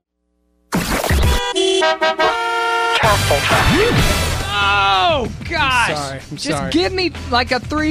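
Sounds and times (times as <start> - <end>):
car horn used as traffic report sounder: 1.2 - 3.3
speech: 1.9 - 2.4, 3.0 - 4.2, 5.1 - 7.9.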